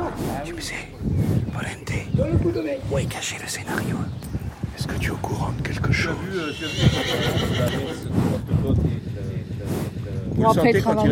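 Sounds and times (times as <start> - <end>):
murmur of people: 0.0 - 11.1
speech: 0.4 - 9.8, 10.4 - 11.1
horse whinnying: 6.3 - 8.1.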